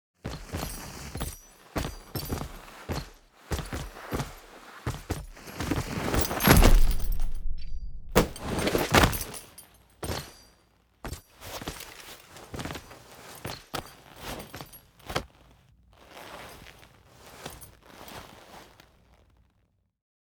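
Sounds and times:
foley footsteps: 0.2s - 10.5s, 11.1s - 19.3s.

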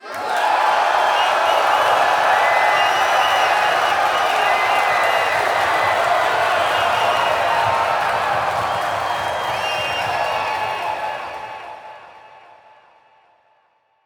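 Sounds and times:
crowd cheering at game start: 0.0s - 13.3s.

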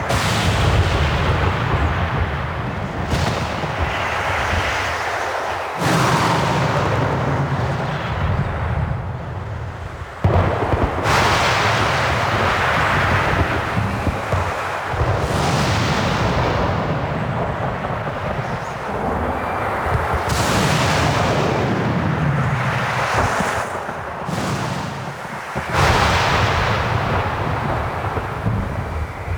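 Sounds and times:
angry weather ambience loop: 0.0s - 29.3s.

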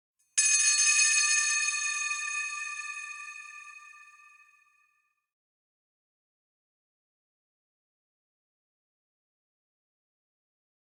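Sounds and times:
high bell: 0.4s - 4.6s.

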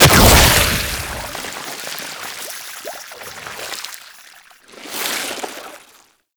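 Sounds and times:
game enemy death sound effect: 0.0s - 1.4s.

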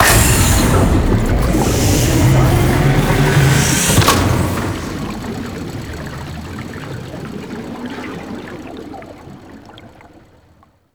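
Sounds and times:
water machine activating: 0.0s - 8.0s.

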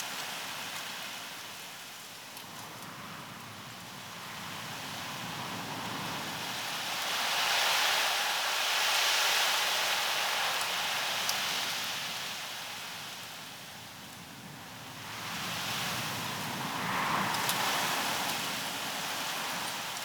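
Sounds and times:
night wind in grass: 0.0s - 20.0s.

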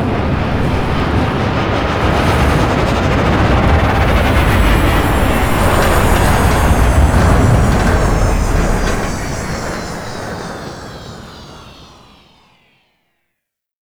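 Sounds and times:
spaceship docking at a relay: 0.1s - 12.8s.

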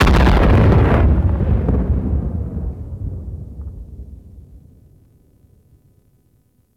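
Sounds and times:
distant space battle explosions: 0.0s - 5.3s.

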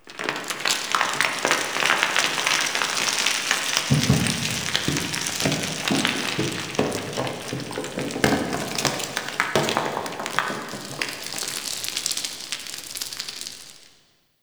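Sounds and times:
rock slide in a cave: 0.1s - 13.7s.

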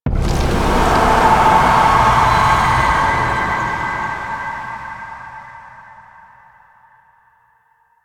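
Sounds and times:
hex appearing game sound effect: 0.2s - 6.5s.

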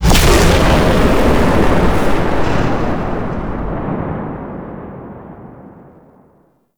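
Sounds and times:
void dragon fire breath cast: 0.0s - 3.9s.

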